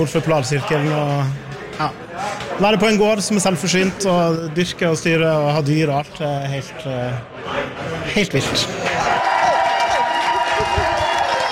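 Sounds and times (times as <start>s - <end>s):
speech: 0.0s - 8.9s
crowd cheering and clapping at an award ceremony: 8.8s - 11.5s
whoops: 9.0s - 11.5s.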